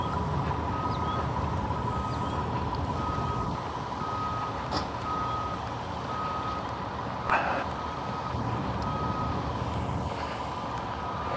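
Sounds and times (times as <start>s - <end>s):
cement truck backup alarm beeping: 0.0s - 6.6s, 7.8s - 9.4s
cement truck diesel engine rumbling while reversing: 0.0s - 11.3s.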